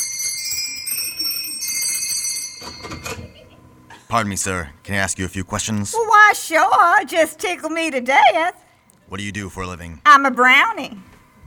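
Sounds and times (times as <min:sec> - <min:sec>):
bell ringing at a workshop door at the North Pole: 0:00.0 - 0:03.5
clattering noise: 0:02.6 - 0:03.5
speech: 0:04.1 - 0:11.1.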